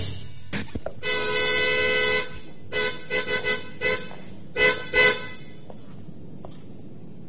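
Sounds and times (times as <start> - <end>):
car horn honked by an elbow leaning on its sensitive button: 1.0 - 5.7.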